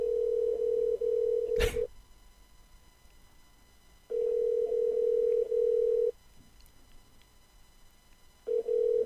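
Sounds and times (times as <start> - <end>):
outgoing phone call ringing tone: 0.0 - 1.5, 4.1 - 6.1, 8.5 - 9.0.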